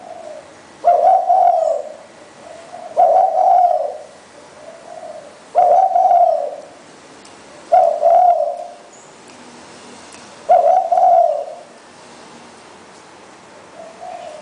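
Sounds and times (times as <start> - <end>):
spotted dove cooing: 0.0 - 6.8, 7.6 - 8.9, 10.4 - 11.8, 13.7 - 14.3.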